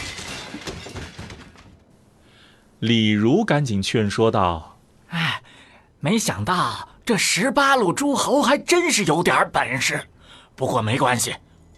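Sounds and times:
tables, chairs, plates and bowls being smashed: 0:00.0 - 0:01.8
speech: 0:02.8 - 0:04.7, 0:06.0 - 0:11.4.

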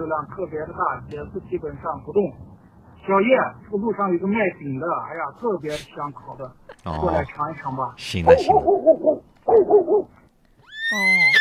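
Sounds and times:
speech: 0:00.0 - 0:10.2, 0:10.9 - 0:11.3
horse neighing: 0:10.6 - 0:11.3.

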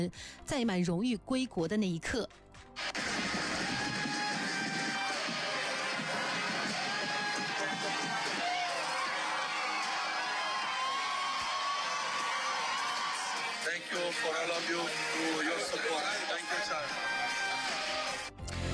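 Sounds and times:
speech: 0:00.0 - 0:02.9, 0:13.9 - 0:17.3
crackling firecrackers: 0:02.8 - 0:08.5
drums pounding: 0:02.8 - 0:13.6
celebrating crowd cheering and shouting: 0:02.8 - 0:18.3.

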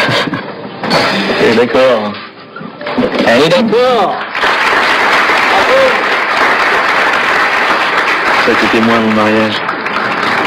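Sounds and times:
speech: 0:01.5 - 0:02.2, 0:03.0 - 0:04.2, 0:08.5 - 0:09.6
restaurant crowd applauding: 0:03.8 - 0:10.4.

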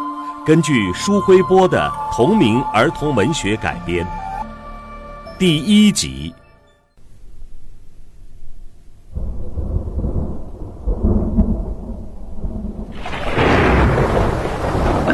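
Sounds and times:
speech: 0:00.5 - 0:04.2, 0:05.4 - 0:06.4
nighttime thunderstorm thunder rumbling: 0:07.1 - 0:15.1
hiss of pouring rain: 0:09.1 - 0:15.1.

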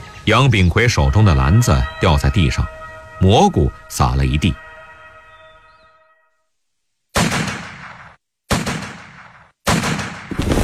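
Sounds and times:
faint droning tones: 0:00.0 - 0:07.0
speech: 0:00.3 - 0:04.6
loud bursts of gunfire: 0:07.1 - 0:10.3.

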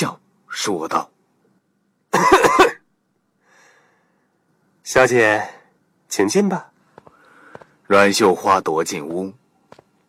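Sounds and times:
speech: 0:00.0 - 0:01.1, 0:04.9 - 0:06.7, 0:07.9 - 0:09.4
man coughing in a short harsh burst: 0:02.1 - 0:02.9.

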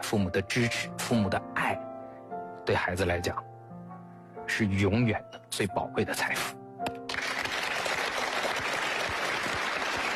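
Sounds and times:
speech: 0:00.1 - 0:01.9, 0:02.7 - 0:03.5, 0:04.5 - 0:06.6
large audience applauding: 0:07.1 - 0:10.1.

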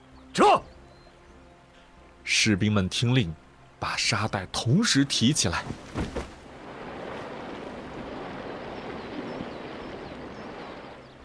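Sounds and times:
speech: 0:02.3 - 0:06.2
floodwater rushing downstream: 0:04.7 - 0:11.2.

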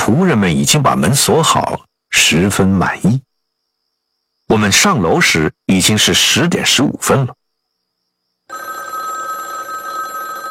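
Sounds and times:
speech: 0:00.1 - 0:03.3, 0:04.5 - 0:07.4
telephone bell ringing in a downstairs hall: 0:08.5 - 0:10.4.

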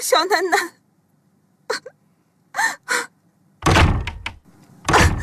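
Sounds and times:
speech: 0:00.2 - 0:00.8
doors and windows of a house being slammed shut in a hurry: 0:03.6 - 0:05.2
rattling: 0:03.6 - 0:05.2.

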